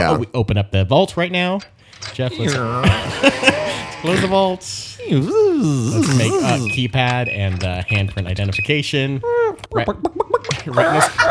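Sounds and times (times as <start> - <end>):
speech: 0.0 - 11.2
laughter: 2.3 - 6.9, 10.3 - 11.2
person making chicken-like clucking vocal noises: 9.3 - 11.2.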